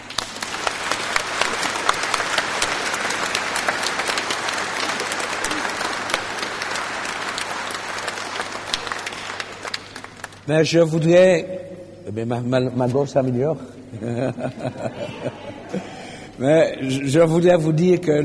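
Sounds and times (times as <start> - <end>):
audience applauding: 0.0 - 10.5
speech: 10.5 - 15.5, 16.4 - 18.2
laughter: 13.9 - 16.3.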